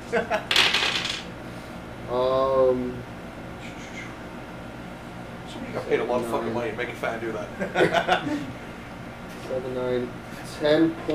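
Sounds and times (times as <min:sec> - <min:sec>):
laughter: 0:00.0 - 0:00.5, 0:07.6 - 0:08.6
speech: 0:00.1 - 0:00.6, 0:02.1 - 0:03.1, 0:05.8 - 0:08.6, 0:09.5 - 0:11.1
handful of dice rolled across a hard surface during a tabletop role-playing game: 0:00.5 - 0:01.3.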